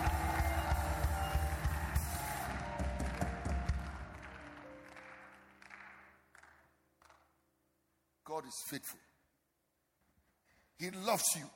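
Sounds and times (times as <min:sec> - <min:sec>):
crowd cheering with raised voices: 0:00.0 - 0:06.0
crowd clapping: 0:00.0 - 0:07.4
speech: 0:08.4 - 0:09.1, 0:10.8 - 0:11.5.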